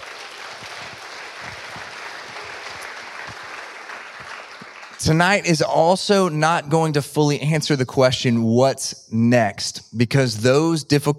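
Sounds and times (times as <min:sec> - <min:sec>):
audience applauding for child care workers: 0:00.0 - 0:05.6
speech: 0:05.0 - 0:11.1.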